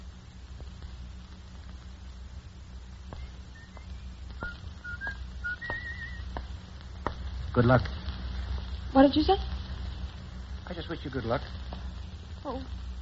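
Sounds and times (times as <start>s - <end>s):
steady hiss: 0.0s - 13.0s
soft taps: 3.1s - 7.3s
man whistling a tune while walking: 3.2s - 6.3s
speech: 7.6s - 8.0s, 8.9s - 9.6s, 10.7s - 11.7s, 12.5s - 12.8s.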